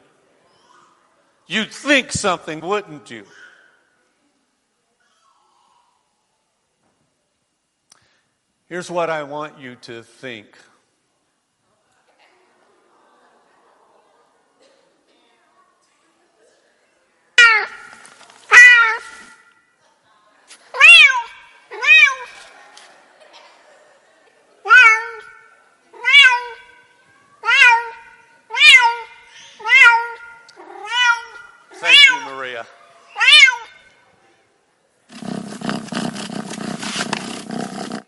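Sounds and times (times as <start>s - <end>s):
speech: 1.5s - 3.4s, 8.7s - 10.7s
laughter: 12.7s - 14.4s, 22.2s - 24.7s
cat meowing: 17.4s - 17.9s, 18.5s - 19.3s, 20.8s - 22.4s, 24.7s - 25.4s, 26.0s - 26.8s, 27.4s - 32.4s, 33.2s - 33.8s
cat purring: 35.1s - 38.0s.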